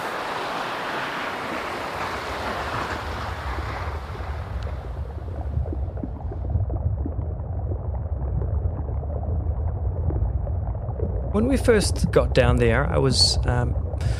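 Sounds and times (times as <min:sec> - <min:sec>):
rushing roar of water at an iceberg: 0:00.0 - 0:06.4, 0:11.3 - 0:14.1
deep heavy iceberg rumble: 0:02.9 - 0:14.1
speech: 0:11.4 - 0:14.1.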